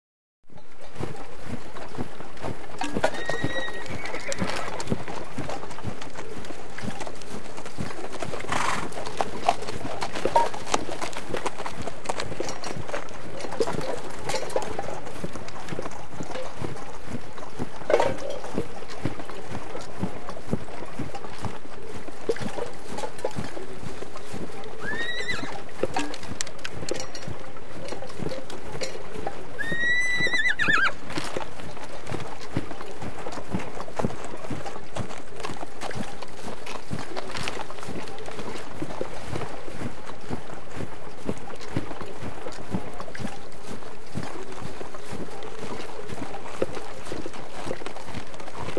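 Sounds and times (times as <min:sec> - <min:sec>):
soldiers marching: 0:00.7 - 0:48.7
horses neighing: 0:02.8 - 0:05.0, 0:08.4 - 0:09.2, 0:24.8 - 0:25.6, 0:29.6 - 0:31.0.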